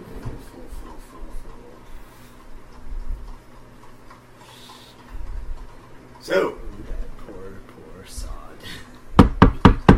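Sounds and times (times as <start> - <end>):
speech: 6.3 - 6.6
knocking on a carriage roof: 9.2 - 9.9.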